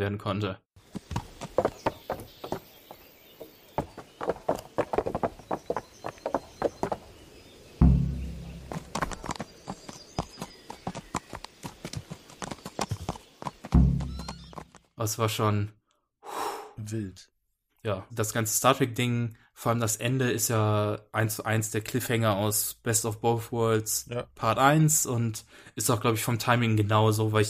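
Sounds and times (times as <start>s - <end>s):
speech: 0.0s - 1.1s, 15.0s - 15.8s, 16.9s - 27.4s
horse hooves clip-clopping while ridden over a bridge: 0.8s - 7.2s, 7.8s - 14.9s.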